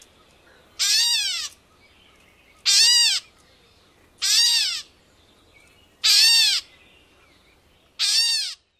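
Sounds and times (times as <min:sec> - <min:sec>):
Gray Catbird kwut mews: 0:00.8 - 0:01.6, 0:02.6 - 0:03.3, 0:04.2 - 0:04.9, 0:06.0 - 0:06.7, 0:08.0 - 0:08.6.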